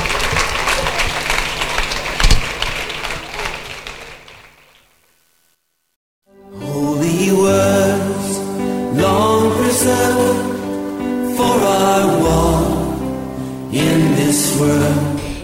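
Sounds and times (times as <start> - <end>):
audience applause: 0.0 - 4.7
music: 6.2 - 15.4.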